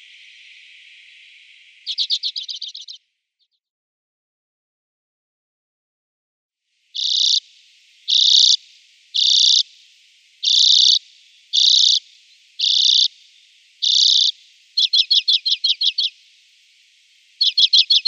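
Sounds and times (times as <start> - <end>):
Common Redpoll song with harsh buzzy notes: 0.0 - 3.6, 7.0 - 16.6.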